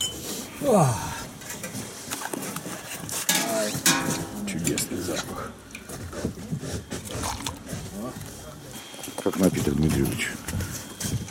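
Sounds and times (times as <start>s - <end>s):
busy bustle in a small restaurant: 0.0s - 11.2s
speech: 0.6s - 1.1s, 4.1s - 8.4s, 9.1s - 10.8s
dishes clinking and clattering in a small restaurant: 3.3s - 5.0s.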